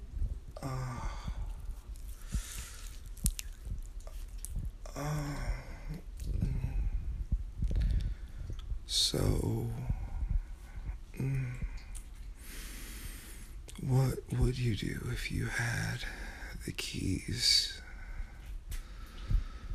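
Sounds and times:
soft breathy sighs and murmurs: 0:00.2 - 0:19.7
wet slick stroking with baby oil: 0:01.7 - 0:04.8
speech: 0:08.9 - 0:09.9, 0:14.5 - 0:17.8.

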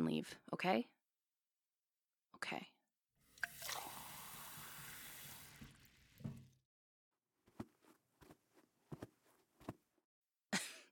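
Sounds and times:
speech: 0:00.1 - 0:01.0, 0:02.4 - 0:02.8
tap running as a glass of water is fetched: 0:03.4 - 0:06.6.

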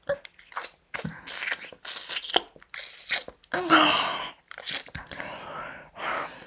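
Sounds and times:
wet mouth slurping and smacking: 0:00.2 - 0:03.5, 0:04.5 - 0:05.2.

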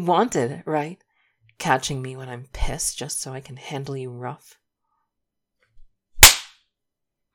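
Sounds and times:
speech: 0:00.0 - 0:01.0, 0:01.6 - 0:04.6
hand slapping a cheek: 0:06.2 - 0:06.5.

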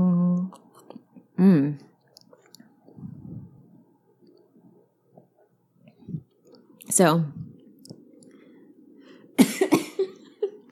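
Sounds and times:
quiet low hum: 0:00.0 - 0:10.7
speech: 0:01.4 - 0:01.9, 0:06.9 - 0:07.4
person coughing after inhaling a sip of Scotch whisky: 0:09.4 - 0:10.2.

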